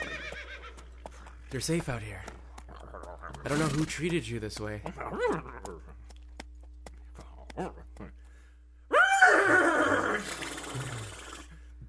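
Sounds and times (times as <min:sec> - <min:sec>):
speech: 0:01.5 - 0:02.4, 0:03.4 - 0:05.9, 0:07.6 - 0:07.8
person imitating a horse whinny: 0:08.9 - 0:11.5.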